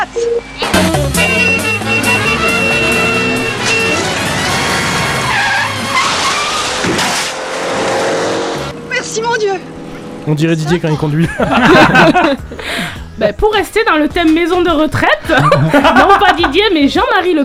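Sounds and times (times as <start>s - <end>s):
speech: 0.0s - 1.0s, 10.3s - 17.4s
car engine driven hard: 0.5s - 11.2s
car tires skidding and squealing: 0.7s - 11.1s
laughter: 10.9s - 12.8s, 15.3s - 16.7s.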